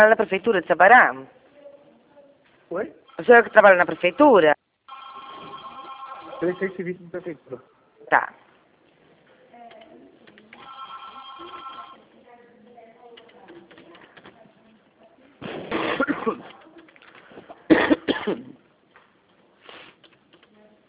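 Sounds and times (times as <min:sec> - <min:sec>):
speech: 0:00.0 - 0:01.4, 0:02.7 - 0:04.6, 0:06.4 - 0:08.4, 0:17.7 - 0:18.6
person coughing loudly in harsh bursts: 0:15.5 - 0:16.6, 0:17.7 - 0:18.6.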